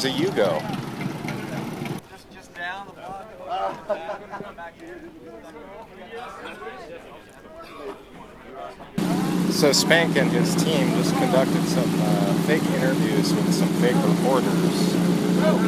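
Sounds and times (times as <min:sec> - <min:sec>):
speech: 0:00.0 - 0:00.9, 0:08.7 - 0:15.6
Toyota Prius fitted with a Harley-Davidson motorcycle engine rumbling: 0:00.0 - 0:02.0, 0:09.0 - 0:15.6
laughter: 0:03.2 - 0:15.6.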